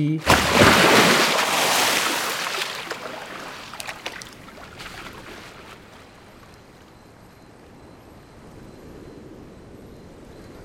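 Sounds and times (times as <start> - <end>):
speech: 0.0 - 1.2
lake water sloshing and lapping: 0.2 - 6.8.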